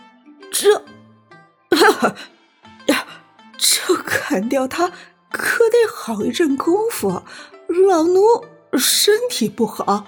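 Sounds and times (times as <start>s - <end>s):
elderly maidservant coughing awkwardly: 0.5s - 0.9s, 1.7s - 2.3s, 2.9s - 4.4s
speech: 0.6s - 1.0s, 1.8s - 2.4s, 3.6s - 10.0s.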